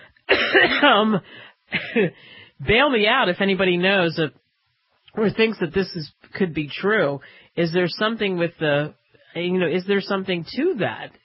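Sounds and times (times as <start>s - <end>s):
dry rasping cough from a man with a dry throat: 0.3s - 2.2s
speech: 0.5s - 4.4s, 5.1s - 11.2s.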